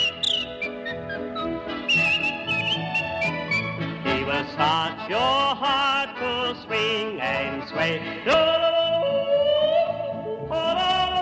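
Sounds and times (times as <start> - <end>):
person whistling a lively melody: 0.0 - 3.8
musical accompaniment: 0.0 - 11.2
speech: 4.3 - 9.2.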